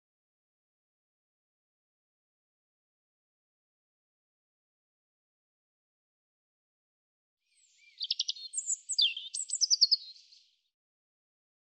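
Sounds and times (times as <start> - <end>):
European robin singing: 7.5 - 10.6.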